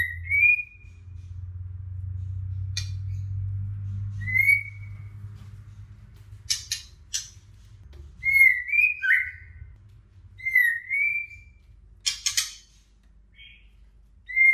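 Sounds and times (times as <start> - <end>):
low hum: 0.0 - 14.5
female White-rumped shama song with clear whistled phrases: 4.2 - 5.0, 8.2 - 9.7, 10.4 - 11.6.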